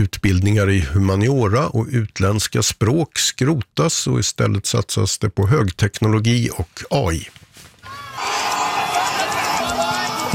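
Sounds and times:
speech: 0.0s - 7.4s
large crowd of Chinese students cheering and shouting: 7.8s - 10.3s.

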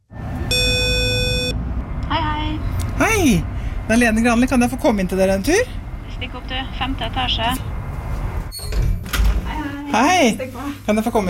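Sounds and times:
low outdoor traffic rumble: 0.0s - 11.2s
doorbell intercom buzzer with harsh electronic buzz: 0.5s - 1.6s
speech: 3.2s - 7.8s, 10.0s - 11.2s.

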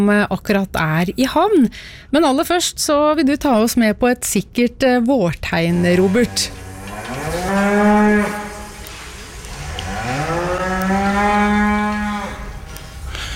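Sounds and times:
speech: 0.0s - 6.6s, 7.3s - 8.4s
cow mooing inside a barn: 5.7s - 12.8s.

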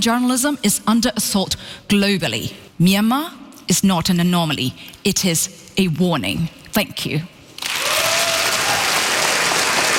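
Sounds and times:
speech: 0.0s - 7.3s
audience applause after a speech at a freedom forum: 7.6s - 9.9s.

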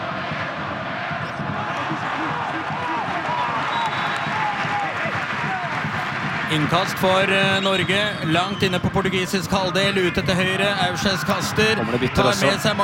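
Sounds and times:
large football stadium crowd roaring and cheering: 0.0s - 12.8s
scattered whistles in a stadium crowd: 3.6s - 4.6s, 7.6s - 8.9s
speech: 6.5s - 12.8s.

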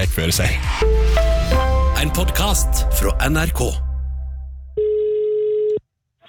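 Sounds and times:
speech: 0.1s - 1.3s, 2.0s - 3.9s
telephone ringback tone on an outgoing call: 4.8s - 5.8s.

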